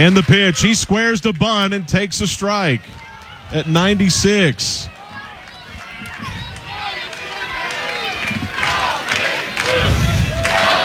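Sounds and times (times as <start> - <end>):
speech: 0.0 - 4.9
large baseball stadium crowd at Kentucky Proud Park roaring and cheering: 0.0 - 10.8
laughter: 0.0 - 10.8.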